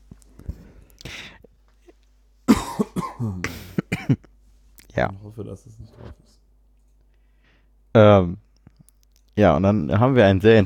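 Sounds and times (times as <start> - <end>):
person clearing throat with harsh rasps and grunts: 2.5 - 4.2
speech: 3.2 - 4.2, 5.0 - 6.4, 7.9 - 8.5, 9.4 - 10.6.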